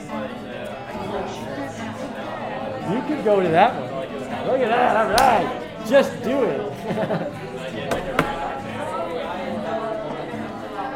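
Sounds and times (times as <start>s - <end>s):
students chattering in a classroom: 0.0s - 10.9s
speech: 2.9s - 3.8s, 4.5s - 8.0s
laughter: 6.2s - 8.8s
sharp knocks: 7.9s - 8.5s.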